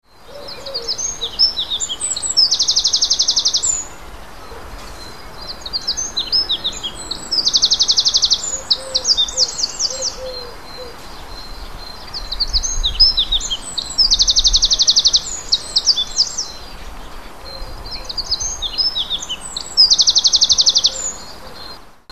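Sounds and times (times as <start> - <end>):
wren singing: 0.0 - 21.8.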